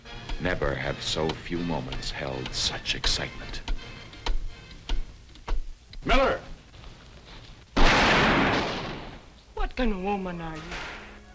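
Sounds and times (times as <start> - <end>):
speech: 0.4 - 3.7, 6.0 - 6.4, 9.8 - 11.0
gunfire: 7.8 - 9.3.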